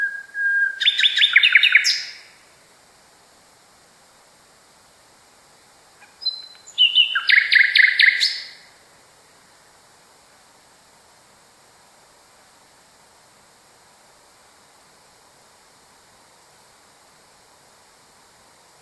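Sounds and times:
common nightingale song: 0.0s - 2.6s, 5.5s - 8.9s.

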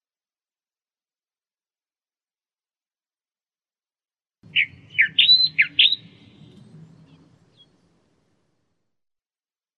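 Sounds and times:
Australian reed warbler singing: 4.4s - 8.6s
faint low background rumble: 4.4s - 9.0s.

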